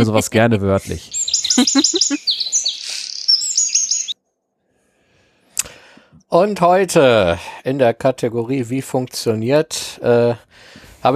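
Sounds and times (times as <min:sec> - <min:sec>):
speech: 0:00.0 - 0:02.4, 0:06.3 - 0:11.1
bird chirping in bright tweets: 0:01.0 - 0:04.2
laughter: 0:01.6 - 0:02.2.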